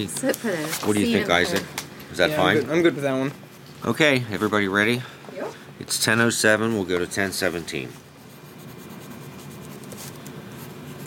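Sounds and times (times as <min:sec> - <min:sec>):
speech: 0:00.0 - 0:08.1
pens of a writing group scratching and rustling on paper: 0:06.7 - 0:11.0.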